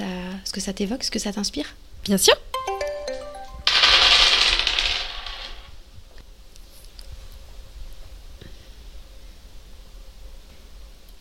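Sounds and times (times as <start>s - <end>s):
speech: 0.0s - 2.4s
bright chime: 2.6s - 3.7s
dice bearing drawings clattering across a hard surface: 2.6s - 5.8s.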